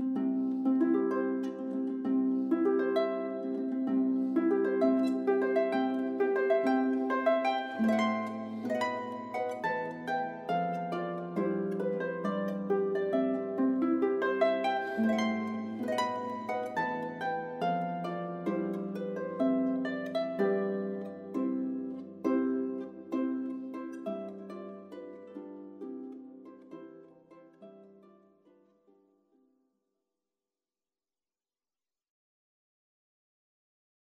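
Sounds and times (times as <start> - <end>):
harp playing a wedding march: 0.1 - 26.9.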